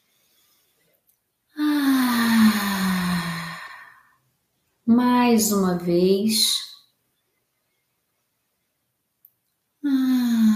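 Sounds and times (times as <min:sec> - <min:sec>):
long deep exhale released as a voiced sigh: 0:01.6 - 0:04.2, 0:09.8 - 0:10.5
speech: 0:04.9 - 0:06.7.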